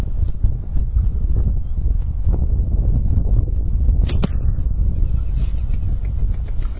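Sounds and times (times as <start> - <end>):
rumbling outdoor wind buffeting the microphone: 0.0 - 6.7
arrow striking target: 4.0 - 4.6.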